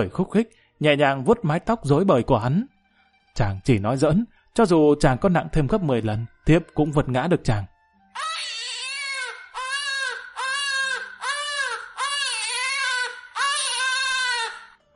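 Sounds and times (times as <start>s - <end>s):
speech: 0.0s - 2.7s, 3.4s - 8.3s
two babies crying loudly: 8.2s - 14.8s.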